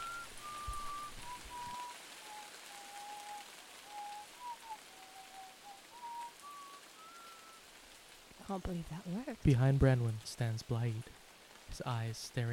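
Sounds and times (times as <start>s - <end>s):
soft wavering whistled melody: 0.0s - 7.7s
steady hiss: 0.0s - 12.5s
speech: 8.5s - 12.5s.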